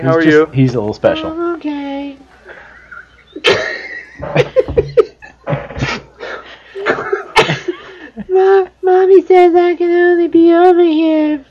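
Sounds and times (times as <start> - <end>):
speech: 0.0 - 1.8, 8.4 - 11.5
laughter: 2.4 - 8.5
person coughing: 5.5 - 7.8.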